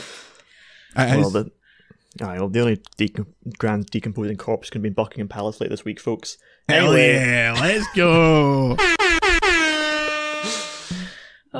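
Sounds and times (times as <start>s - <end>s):
speech: 1.0s - 9.0s
laughter: 7.2s - 8.9s
loud air horn blasts: 8.8s - 11.2s.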